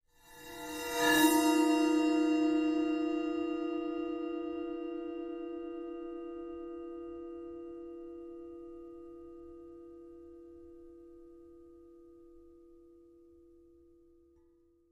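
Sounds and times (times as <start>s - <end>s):
8-inch splash cymbal played on the bow: 0.1s - 8.9s.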